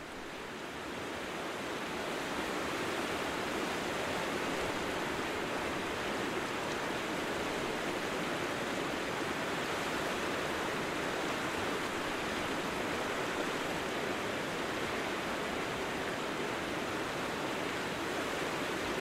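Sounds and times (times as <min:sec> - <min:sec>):
river flowing past a riverbank: 0:00.0 - 0:18.9.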